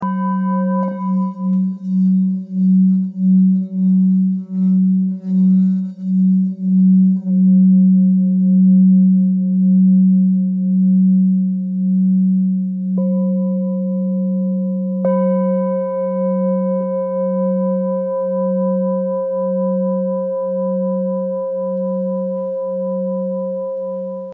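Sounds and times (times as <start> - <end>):
low G singing bowl weighing 1.14 kg: 0.0 - 24.3.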